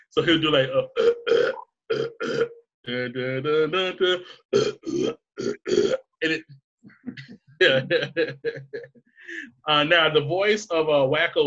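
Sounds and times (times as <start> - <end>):
speech: 0.1 - 1.2, 2.0 - 11.4
loud burps shaped into an operatic melody: 0.8 - 6.6
laughter: 7.1 - 8.9.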